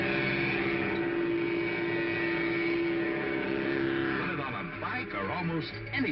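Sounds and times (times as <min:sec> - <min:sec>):
toy engine revving like a real engine: 0:00.0 - 0:06.0
speech: 0:05.5 - 0:06.0.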